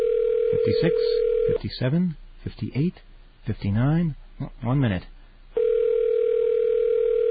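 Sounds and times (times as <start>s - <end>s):
telephone ringback tone on a customer service call: 0.0s - 1.6s, 5.6s - 7.2s
speech: 0.6s - 5.2s.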